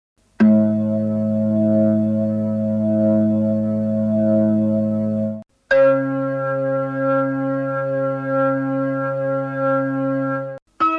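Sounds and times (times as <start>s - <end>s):
Hammond organ playing: 0.4s - 10.9s.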